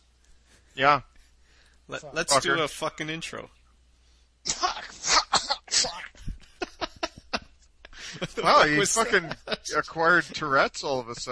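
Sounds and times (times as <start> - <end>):
speech: 0.8 - 1.1, 1.9 - 3.6, 4.4 - 4.7, 8.2 - 11.3
man clearing his throat: 4.5 - 6.3
laughter: 6.1 - 11.3.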